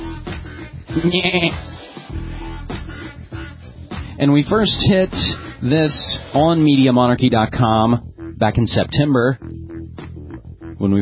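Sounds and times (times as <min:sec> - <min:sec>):
goat bleating: 0:00.9 - 0:01.6
speech: 0:01.0 - 0:01.7, 0:04.2 - 0:09.5, 0:10.8 - 0:11.0.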